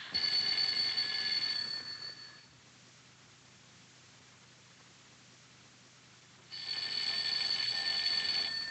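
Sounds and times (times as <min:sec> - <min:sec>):
telephone ringing in a guest's room: 0:00.1 - 0:02.5, 0:06.5 - 0:08.6.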